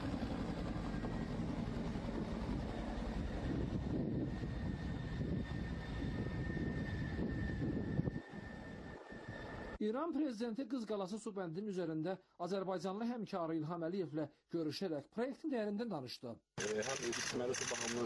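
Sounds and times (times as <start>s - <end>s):
helicopter engine and rotors landing beside a water reservoir dam: 0.0s - 9.8s, 16.6s - 18.0s
speech: 9.8s - 18.0s.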